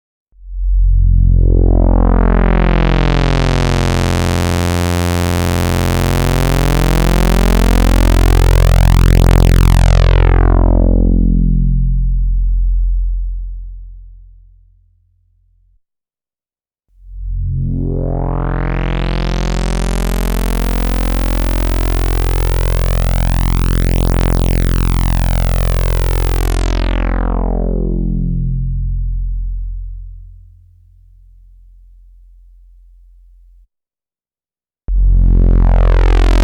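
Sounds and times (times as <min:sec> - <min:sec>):
synthesizer filter sweeps with drive: 0:00.4 - 0:13.2, 0:17.0 - 0:30.7, 0:34.9 - 0:36.4.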